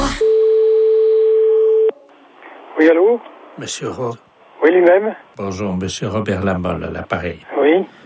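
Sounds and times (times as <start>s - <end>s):
steady telephone line tone after line is reconnected: 0.2s - 2.0s
speech: 2.8s - 8.0s.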